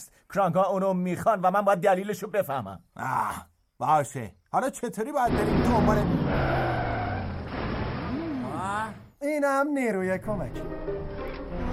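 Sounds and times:
speech: 0.0s - 6.8s, 8.9s - 11.2s
car driving up: 5.3s - 8.3s
car tyres squealing in a skid: 5.3s - 9.0s.

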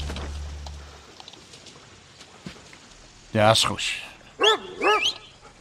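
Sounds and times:
speech: 3.4s - 4.1s
dog giving high-pitched whining barks: 4.4s - 5.3s.

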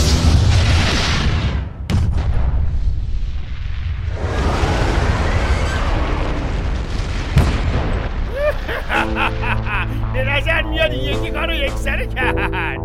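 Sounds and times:
heavy explosive blasts with deep booming bursts: 0.2s - 9.0s
crackling debris: 3.8s - 8.9s
laughter: 8.3s - 12.8s.

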